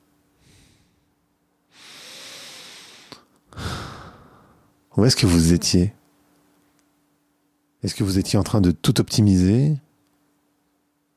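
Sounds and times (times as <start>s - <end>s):
deep breathing: 0.4s - 4.7s
speech: 5.0s - 6.0s, 7.8s - 9.8s.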